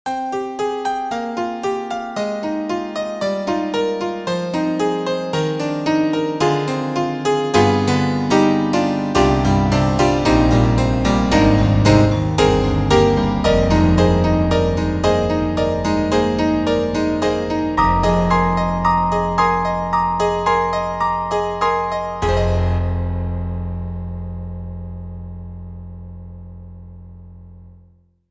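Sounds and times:
Roland Juno-Gi Brite Piano: 0:00.0 - 0:27.9.

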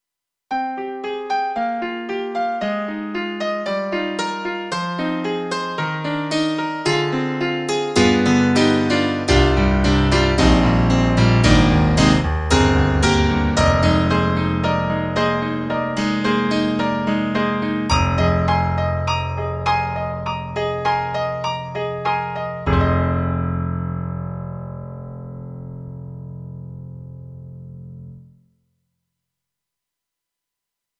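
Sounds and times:
bright grand piano sample from KORG EXB-PCM08 TRITON-Rack: 0:00.5 - 0:28.5.

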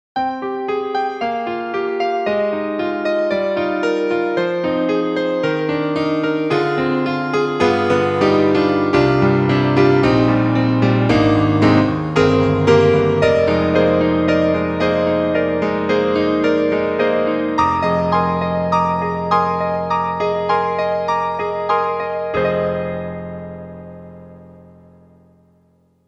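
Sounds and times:
Kawai GMega piano: 0:00.2 - 0:26.0.

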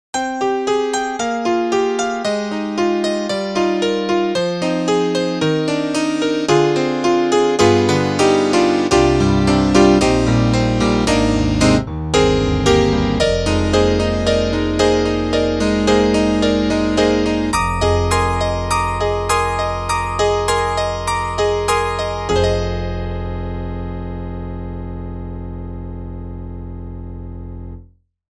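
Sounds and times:
Roland JD-990 synthesizer acoustic piano: 0:00.1 - 0:27.8.

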